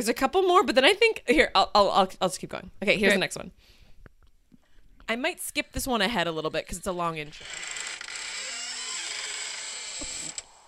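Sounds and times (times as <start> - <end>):
speech: 0.0 - 3.8, 5.1 - 8.0
door creaking open: 6.4 - 10.6.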